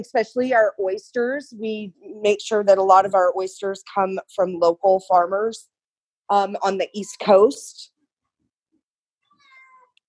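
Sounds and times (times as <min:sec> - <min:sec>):
speech: 0:00.0 - 0:05.7, 0:06.3 - 0:07.9
cat meowing: 0:09.3 - 0:10.0.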